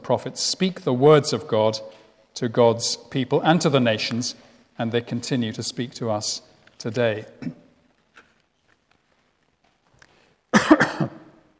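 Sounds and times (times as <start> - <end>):
speech: 0.1 - 7.6
audience members coughing in a room: 7.4 - 7.7, 10.5 - 11.4.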